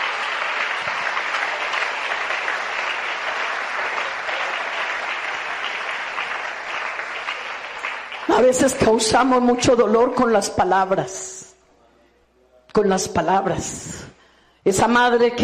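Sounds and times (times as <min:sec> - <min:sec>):
audience applauding loudly: 0:00.0 - 0:09.0
speech: 0:08.4 - 0:11.4, 0:12.8 - 0:15.4.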